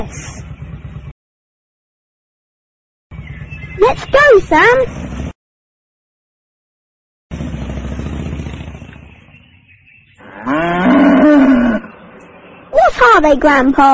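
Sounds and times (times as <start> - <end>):
speech: 3.8 - 5.0, 13.2 - 13.9
cow mooing and bellowing: 10.2 - 12.0.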